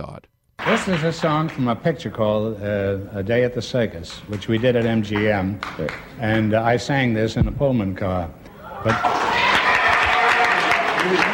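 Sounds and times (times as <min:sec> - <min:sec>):
speech: 0:00.0 - 0:09.4, 0:11.0 - 0:11.3
audience applauding: 0:00.6 - 0:01.8, 0:04.3 - 0:06.5, 0:08.8 - 0:11.3.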